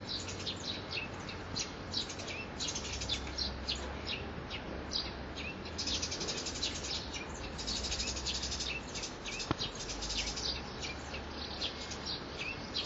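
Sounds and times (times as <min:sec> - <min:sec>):
sparrow: 0:00.0 - 0:12.8.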